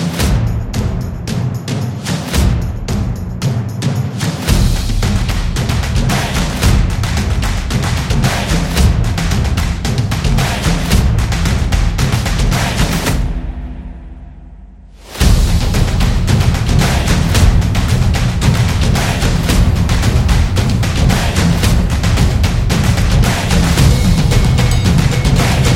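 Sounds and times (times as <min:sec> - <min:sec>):
action drum solo: 0:00.2 - 0:13.1, 0:15.1 - 0:25.7.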